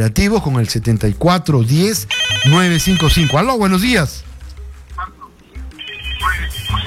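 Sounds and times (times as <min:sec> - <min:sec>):
speech: 0:00.0 - 0:04.3
telephone ringing with steady electronic ringtone for incoming call to a phone-in line: 0:02.1 - 0:03.8, 0:05.6 - 0:06.8.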